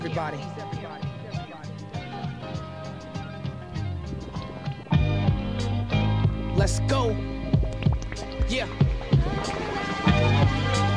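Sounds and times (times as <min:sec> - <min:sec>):
busy musical backdrop: 0:00.0 - 0:10.9
speech: 0:00.2 - 0:01.0, 0:06.7 - 0:07.3, 0:08.5 - 0:10.7
deep booming heartbeat-like thumps: 0:02.4 - 0:10.8.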